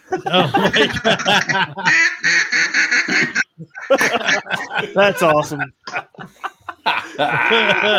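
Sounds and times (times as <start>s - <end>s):
laughter: 0.0s - 2.0s, 3.6s - 7.9s
speech: 0.1s - 2.4s, 4.8s - 5.8s, 7.2s - 7.9s
timed duck decoy quacking in a duck blind: 0.7s - 4.7s.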